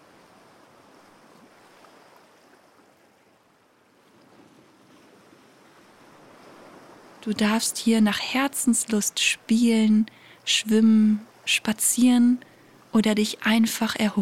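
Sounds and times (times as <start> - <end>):
ocean surf rolling and washing onto a beach: 0.0 - 14.2
wind: 0.0 - 14.2
speech: 7.2 - 14.2.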